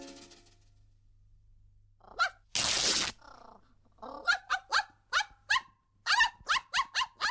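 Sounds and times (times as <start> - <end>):
dog barking: 2.1 - 2.5, 4.1 - 7.2.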